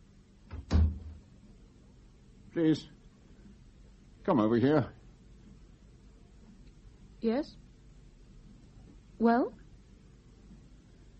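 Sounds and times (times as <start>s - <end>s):
faint hiss: 0.0s - 11.1s
door being shut: 0.5s - 1.2s
speech: 2.6s - 3.0s, 4.2s - 5.0s, 7.2s - 7.6s, 9.2s - 9.6s.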